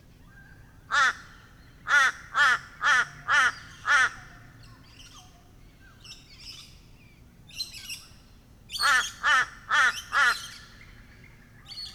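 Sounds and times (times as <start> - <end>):
crow cawing: 0.9 - 1.2, 1.9 - 4.3, 8.8 - 10.6.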